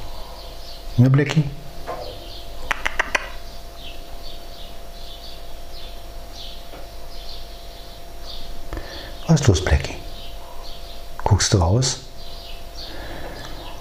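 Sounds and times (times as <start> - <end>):
birds singing outside: 0.0 - 13.7
refrigerator hum: 0.0 - 13.7
speech: 1.0 - 1.6, 9.3 - 10.1, 11.5 - 12.1
sharp clicks: 2.7 - 3.4.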